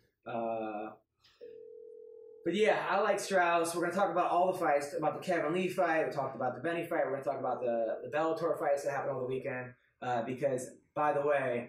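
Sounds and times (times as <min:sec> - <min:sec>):
speech: 0:00.2 - 0:00.6, 0:02.4 - 0:11.6
outgoing Skype call ringing tone: 0:01.4 - 0:02.5.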